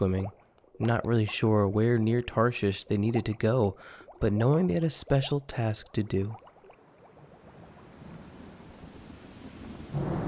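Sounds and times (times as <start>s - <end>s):
speech: 0.0s - 6.4s, 9.9s - 10.2s
rain: 7.1s - 10.2s
storm roaring: 7.5s - 10.2s
low rumbling thunder: 7.9s - 10.2s.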